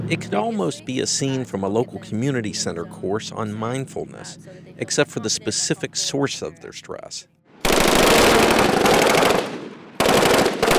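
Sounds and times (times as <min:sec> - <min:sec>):
speech: 0:00.1 - 0:07.4
machine guns firing at a shooting range: 0:07.6 - 0:10.7.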